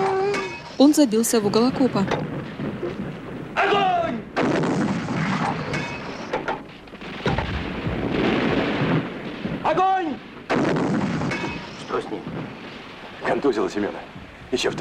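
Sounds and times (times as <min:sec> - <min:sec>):
heavy artillery booming in a war battle: 0:00.0 - 0:14.8
gunfire crackling in a war battle: 0:00.2 - 0:14.8
speech: 0:00.8 - 0:02.3, 0:13.4 - 0:14.8.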